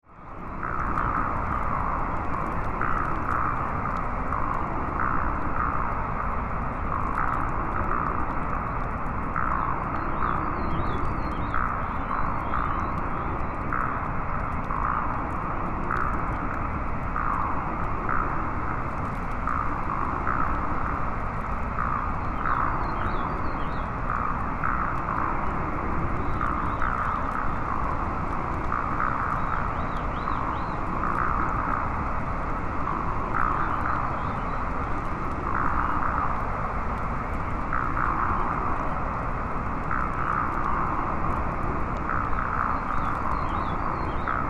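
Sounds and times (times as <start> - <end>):
science fiction alien jungle insects: 0.0 - 44.4.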